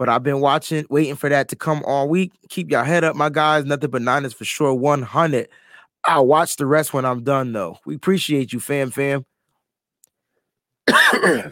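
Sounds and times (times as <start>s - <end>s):
speech: 0.0s - 9.3s, 10.9s - 11.5s
man with a cold coughing: 10.9s - 11.5s.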